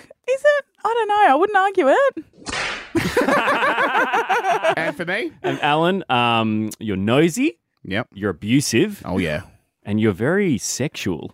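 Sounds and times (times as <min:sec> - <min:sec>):
speech: 0:00.9 - 0:02.4, 0:03.0 - 0:11.3
whip crack sound effect with swishing whoosh: 0:02.4 - 0:03.0
bouncy laughter: 0:03.0 - 0:05.6.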